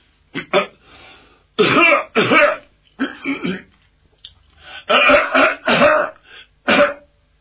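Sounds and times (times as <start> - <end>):
man clearing throat deliberately to get attention outside a door: 0.3 - 0.8, 1.6 - 3.7, 4.9 - 7.1
man coughing deliberately to get attention outside a door: 0.4 - 0.8, 1.6 - 3.7, 4.9 - 7.1.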